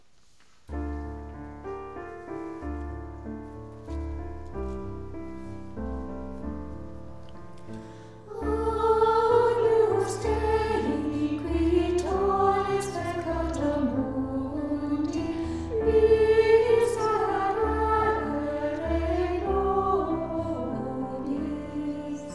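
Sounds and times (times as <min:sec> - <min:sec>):
piano: 0:00.0 - 0:22.3
choir singing a sacred piece: 0:08.3 - 0:22.3.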